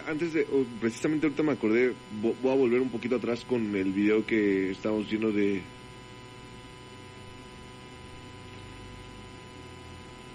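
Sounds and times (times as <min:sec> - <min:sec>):
low electrical hum with vibrating buzz: 0:00.0 - 0:10.3
static hiss: 0:00.0 - 0:10.3
speech: 0:00.1 - 0:05.8.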